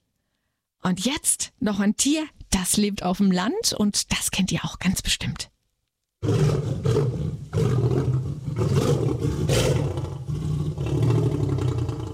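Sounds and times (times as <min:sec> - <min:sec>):
speech: 0:00.8 - 0:05.5
lion roaring: 0:06.2 - 0:12.1.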